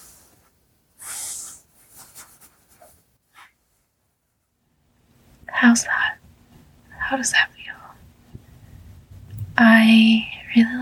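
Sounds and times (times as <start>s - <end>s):
fingers running through a person's hair: 1.0s - 3.6s
speech: 5.6s - 6.0s, 7.1s - 7.6s, 9.8s - 10.8s.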